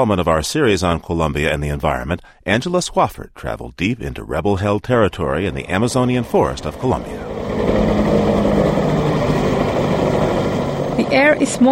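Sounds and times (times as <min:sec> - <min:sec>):
speech: 0:00.0 - 0:07.7, 0:11.1 - 0:11.7
military helicopter engines droning on airport tarmac: 0:05.3 - 0:11.7.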